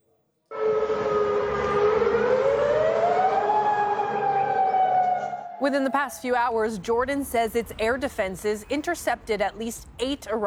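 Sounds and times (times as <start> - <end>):
air raid warning sirens wailing: 0.5 - 10.4
rumbling: 2.9 - 10.4
speech: 5.6 - 10.4.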